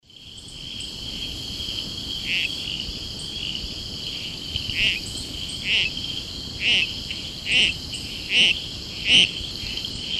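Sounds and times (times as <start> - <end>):
Boophis viridis calling: 2.2 - 2.6, 4.7 - 6.0, 6.6 - 10.1.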